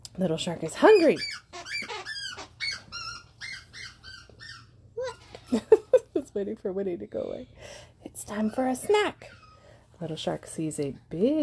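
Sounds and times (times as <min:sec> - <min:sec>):
speech: 0:00.2 - 0:01.7, 0:06.4 - 0:09.4, 0:10.0 - 0:11.4
dog squeaking and whining: 0:00.8 - 0:05.5, 0:09.2 - 0:09.8.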